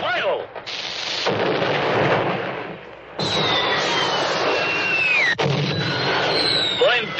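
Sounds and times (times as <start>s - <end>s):
gunshot in a film scene: 0.6s - 6.5s
high whistling tones gliding downward: 3.2s - 7.1s.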